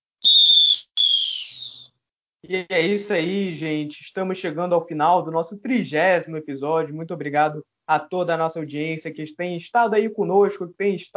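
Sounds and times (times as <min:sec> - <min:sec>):
referee's final whistle blasts: 0:00.2 - 0:01.8
speech: 0:02.4 - 0:11.1.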